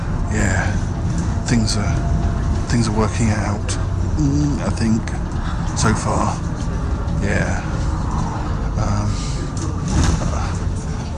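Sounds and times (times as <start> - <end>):
engine rumble inside a moving bus: 0.0 - 11.1
speech: 1.5 - 6.5, 7.2 - 7.8.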